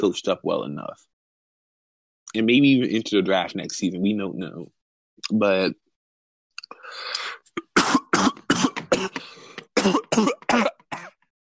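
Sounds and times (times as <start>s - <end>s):
speech: 0.0s - 1.1s, 2.3s - 5.8s
person coughing: 7.6s - 11.2s.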